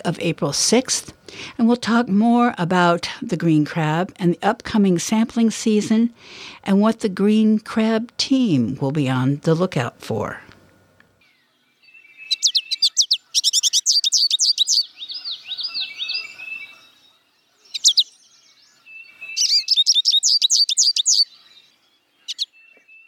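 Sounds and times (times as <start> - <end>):
speech: 0.0 - 10.5
American goldfinch song and calls: 12.2 - 17.0, 17.6 - 18.5, 19.3 - 21.6.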